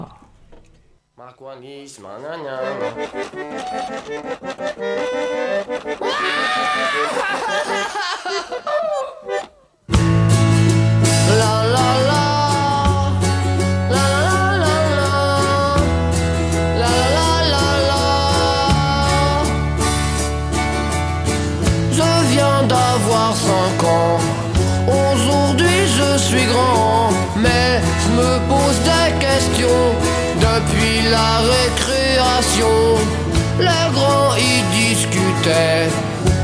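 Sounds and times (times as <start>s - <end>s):
speech: 1.2s - 9.4s
singing voice over the band: 6.0s - 9.3s, 11.2s - 19.8s, 21.8s - 36.4s
laughter: 6.0s - 9.5s
driving bass: 9.9s - 36.4s
loud dense rock song played by a rock band: 9.9s - 36.4s.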